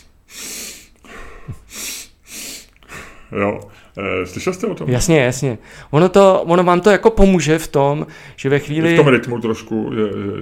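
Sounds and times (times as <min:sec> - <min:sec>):
breathing technique through the nose with two inhales and one longer exhale: 0:00.0 - 0:03.9
speech: 0:03.3 - 0:10.4.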